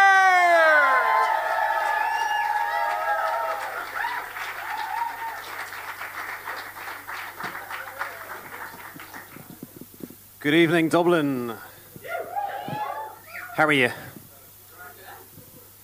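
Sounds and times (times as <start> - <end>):
crowd whooping and cheering: 0.0 - 9.2, 12.0 - 13.8
audience in Dublin applauding: 0.0 - 9.6
speech: 10.4 - 11.7, 13.6 - 14.1.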